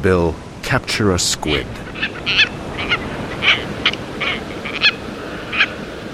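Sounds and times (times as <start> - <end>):
speech: 0.0 - 2.4
steady hiss: 0.0 - 6.1
shrill harsh tropicbird calls: 1.6 - 6.1.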